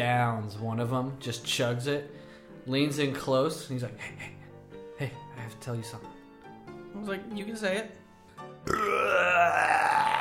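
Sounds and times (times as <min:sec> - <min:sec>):
speech: 0:00.0 - 0:04.4, 0:05.0 - 0:06.2, 0:07.0 - 0:10.1
long loud burp: 0:08.6 - 0:10.1.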